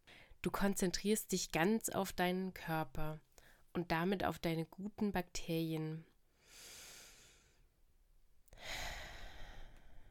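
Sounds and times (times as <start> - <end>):
speech: 0.4 - 6.1
person breathing slowly: 6.4 - 7.7, 8.5 - 10.0.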